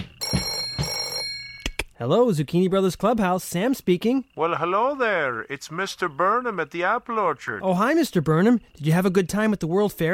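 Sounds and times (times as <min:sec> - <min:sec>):
telephone ringing with bell-like pulses: 0:00.0 - 0:01.7
speech: 0:02.0 - 0:10.1.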